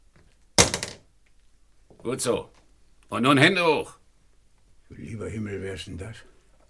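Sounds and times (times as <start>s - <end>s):
pistol dropped onto a hard floor: 0.2s - 1.1s
speech: 2.0s - 4.0s, 5.0s - 6.3s.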